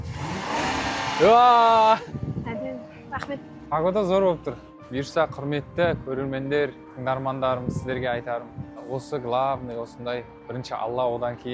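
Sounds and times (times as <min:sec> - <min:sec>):
car engine revving as the driver presses the gas: 0:00.0 - 0:02.0
speech: 0:01.2 - 0:02.2, 0:03.2 - 0:11.5.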